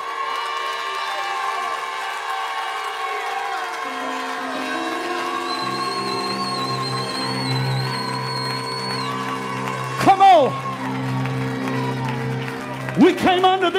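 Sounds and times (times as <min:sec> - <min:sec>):
crowd cheering: 0:00.0 - 0:13.7
shofar ram's horn blasts: 0:03.8 - 0:10.9
speech: 0:13.0 - 0:13.7.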